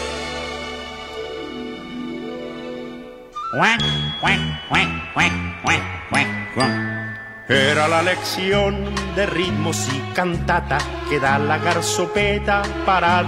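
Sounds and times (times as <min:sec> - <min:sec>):
sustained musical tone: 0:01.9 - 0:09.5
speech: 0:03.5 - 0:06.9, 0:07.5 - 0:13.2.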